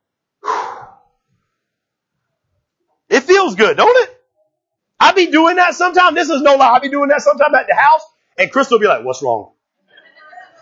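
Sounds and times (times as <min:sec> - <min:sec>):
person taking a deep breath: 0:00.4 - 0:01.1
speech: 0:03.3 - 0:04.1, 0:05.2 - 0:09.6.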